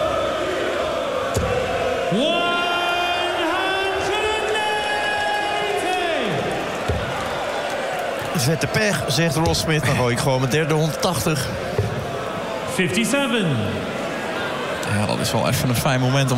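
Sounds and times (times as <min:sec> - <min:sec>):
large crowd roaring at a darts match: 0:00.0 - 0:16.3
speech: 0:02.1 - 0:02.5, 0:08.4 - 0:11.7, 0:12.8 - 0:13.9, 0:14.9 - 0:16.3.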